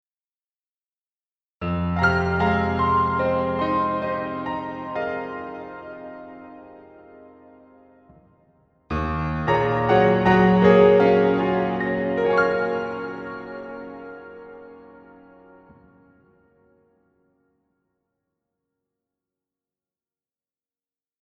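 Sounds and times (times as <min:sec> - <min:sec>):
acoustic piano in a dreamy hall: 0:01.6 - 0:17.0.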